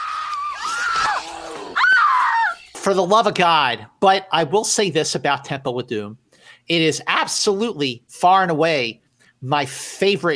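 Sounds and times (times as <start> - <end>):
woman screaming in a film: 0.0 - 2.6
sharp loud shriek: 0.0 - 2.8
speech: 2.8 - 10.3.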